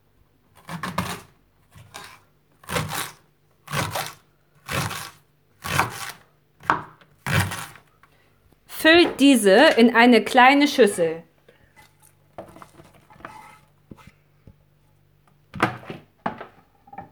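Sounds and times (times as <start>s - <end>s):
knife chopping washed, trimmed spring onions into half-centimetre-thick rings: 0.6s - 7.8s
speech: 8.8s - 11.3s.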